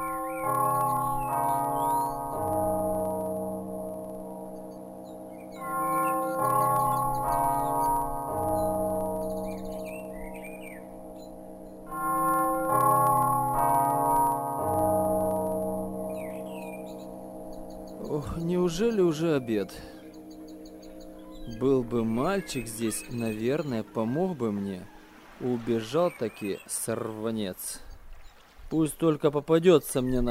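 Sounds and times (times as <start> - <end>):
bell ringing melodically: 0.0 - 25.1
faint bird chirps: 4.6 - 11.8, 16.1 - 28.6
speech: 18.8 - 20.0, 21.6 - 27.9, 28.7 - 30.3.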